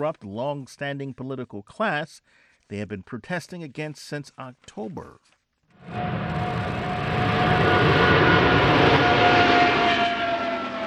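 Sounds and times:
speech: 0.0 - 6.7
Boeing 777X twin-engine jet airliner roaring past on its maiden flight: 5.8 - 10.8.

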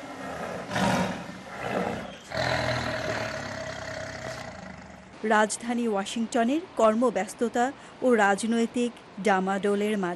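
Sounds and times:
tiger roaring in a wildlife sanctuary within a city park in Washington: 0.0 - 5.2
speech: 5.2 - 10.1.

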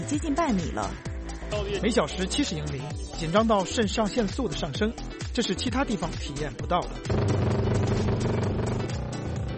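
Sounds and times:
speech: 0.1 - 8.8
ice racing motorcycles at full throttle on a frozen lake: 7.1 - 9.5.

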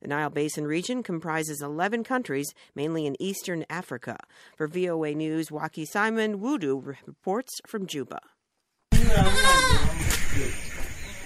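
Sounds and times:
speech: 0.1 - 8.3, 9.1 - 10.7
goat bleating on a farm on the bank of the River Nile in Bor: 9.0 - 10.0.

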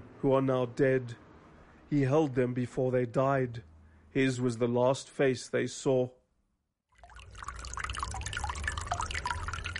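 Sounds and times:
low hum: 0.0 - 6.1, 7.0 - 9.7
speech: 0.2 - 1.2, 1.9 - 6.2
water bubbling and trickling from a small office fountain: 6.9 - 9.7.

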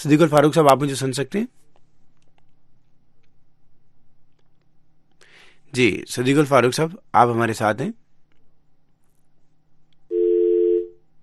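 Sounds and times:
speech: 0.0 - 1.6, 5.7 - 8.0
telephone tone on a faulty phone line: 10.1 - 11.0.

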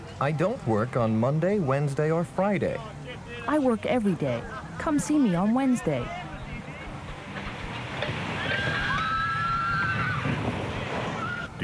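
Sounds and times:
speech: 0.2 - 6.2
outdoor wind noise: 6.0 - 11.6
horse whinnying: 8.4 - 10.4, 11.0 - 11.6.

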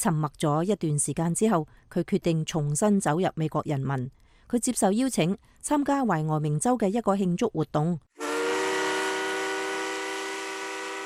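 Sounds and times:
speech: 0.0 - 8.1
westbound train whistle sounding a sustained chord: 8.2 - 11.0.

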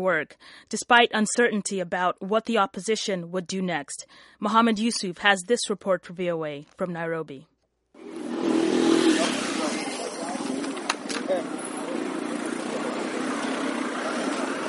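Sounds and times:
speech: 0.0 - 7.5
city street traffic with engines droning: 8.0 - 14.6.

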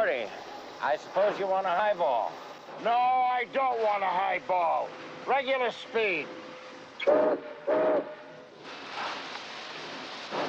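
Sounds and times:
speech: 0.0 - 6.4, 7.0 - 8.2
freight train departing with low rumble and hiss: 0.0 - 10.4
freight train whistle blasts: 7.0 - 8.4.

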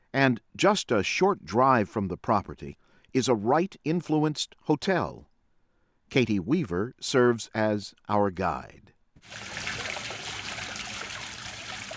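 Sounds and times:
speech: 0.2 - 5.3, 6.1 - 9.8
fountain water splashing onto the ground in Arizona: 9.2 - 11.9.

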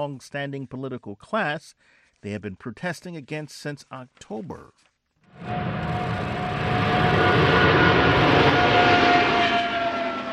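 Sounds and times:
speech: 0.0 - 6.0
large jetliner roaring overhead: 5.4 - 10.3
thin sustained whine: 5.4 - 10.3.

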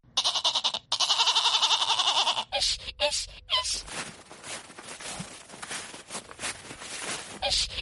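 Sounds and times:
goat bleating as it is driven into its pen: 0.1 - 2.6
scuffling: 3.6 - 7.7.

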